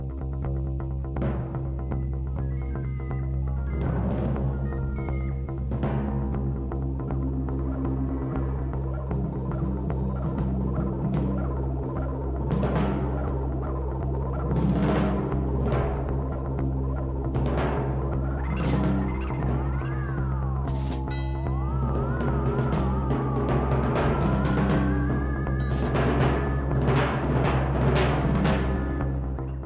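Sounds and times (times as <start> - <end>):
low synthesizer drone: 0.0 - 29.6
wavering gliding synthesizer tones: 4.5 - 27.8.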